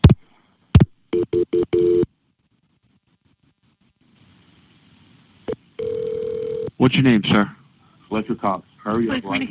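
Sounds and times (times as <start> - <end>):
faint telephone line hiss: 0.0 - 9.5
telephone line tone during 911 call transfer: 1.2 - 2.1, 5.5 - 6.7
speech: 6.8 - 9.5.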